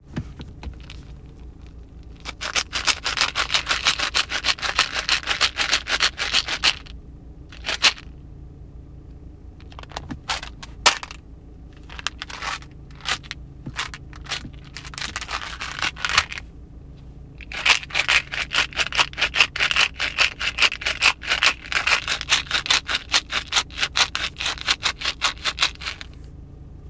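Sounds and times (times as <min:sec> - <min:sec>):
ice shaker: 0:00.8 - 0:06.9, 0:07.6 - 0:08.0, 0:09.6 - 0:11.2, 0:11.8 - 0:16.4, 0:17.4 - 0:26.2.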